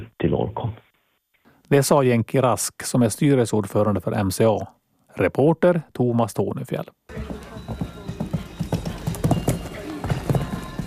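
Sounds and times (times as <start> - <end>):
faint noise: 0.0 - 10.8
speech: 0.3 - 0.9, 1.7 - 7.8
horse hooves clip-clopping: 7.1 - 10.8.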